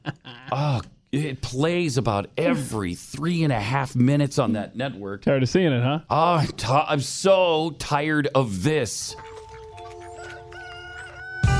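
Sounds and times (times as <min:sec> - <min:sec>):
speech: 0:00.5 - 0:09.3
rooster crowing at a chicken coop: 0:10.3 - 0:11.5.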